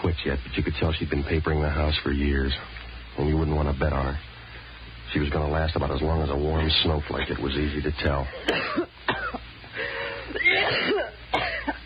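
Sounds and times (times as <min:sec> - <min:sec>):
speech: 0:00.1 - 0:04.3, 0:05.1 - 0:09.4
harsh congested coughing: 0:08.3 - 0:11.8.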